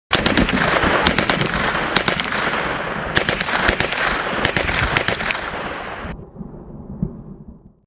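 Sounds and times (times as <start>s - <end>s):
MP 40 submachine gun fire: 0.1s - 6.0s.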